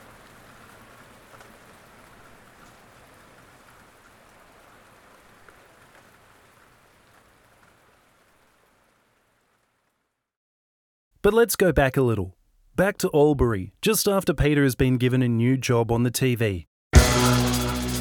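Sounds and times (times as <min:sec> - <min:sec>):
gentle rain falling: 0:00.0 - 0:10.4
speech: 0:11.2 - 0:17.3.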